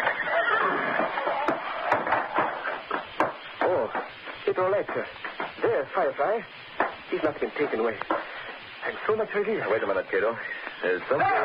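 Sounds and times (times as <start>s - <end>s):
horse whinnying and neighing in a stable: 0.0s - 1.6s
hooves striking wood in a stall: 0.0s - 9.3s
speech: 4.6s - 8.2s, 8.9s - 11.4s.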